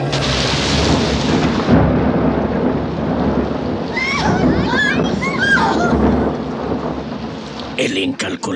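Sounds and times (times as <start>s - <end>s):
thunder rolling through a storm: 0.1s - 8.1s
rain: 0.1s - 8.5s
speech: 7.9s - 8.5s.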